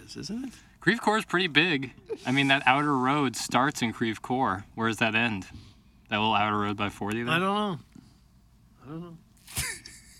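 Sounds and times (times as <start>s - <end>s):
speech: 0.1s - 7.9s, 8.9s - 9.8s
sneeze: 9.4s - 10.0s.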